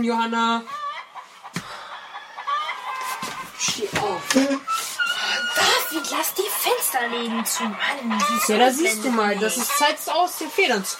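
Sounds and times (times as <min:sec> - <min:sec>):
speech: 0:00.0 - 0:00.8, 0:03.6 - 0:10.9
rooster crowing: 0:01.7 - 0:04.4, 0:05.0 - 0:10.7.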